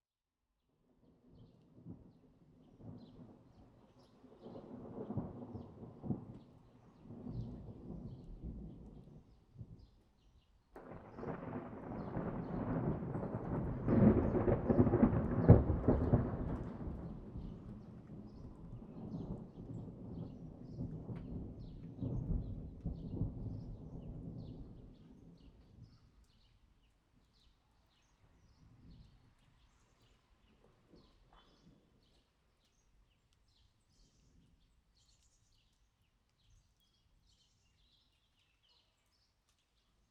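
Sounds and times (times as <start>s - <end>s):
thunder: 4.3s - 9.9s, 10.8s - 26.0s.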